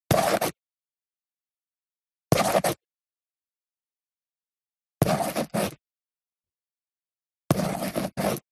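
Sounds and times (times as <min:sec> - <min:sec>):
ballpoint pen handwriting in a book: 0:00.1 - 0:00.6, 0:02.3 - 0:02.8, 0:05.0 - 0:05.8, 0:07.5 - 0:08.5.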